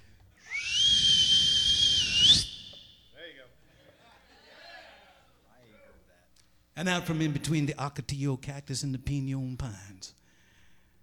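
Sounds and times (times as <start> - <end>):
sustained high whistle with reverb: 0.4 - 3.2
speech: 6.8 - 10.2.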